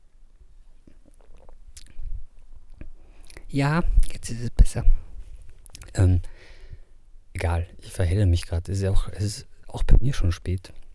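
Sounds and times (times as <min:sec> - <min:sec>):
soft low gulp: 0:00.8 - 0:03.4
person sipping a drink: 0:00.8 - 0:03.5
wet mouth clicks and lip sounds: 0:00.8 - 0:04.4, 0:05.6 - 0:06.4
speech: 0:03.5 - 0:05.0, 0:06.0 - 0:06.5, 0:07.4 - 0:10.8.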